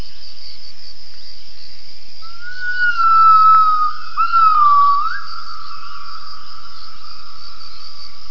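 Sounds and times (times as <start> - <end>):
gibbon whistled call: 2.3 - 5.3.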